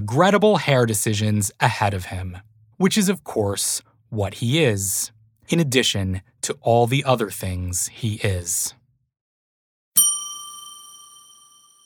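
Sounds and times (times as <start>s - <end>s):
speech: 0.0s - 8.8s
bell strike with bright metallic tone: 10.0s - 11.8s.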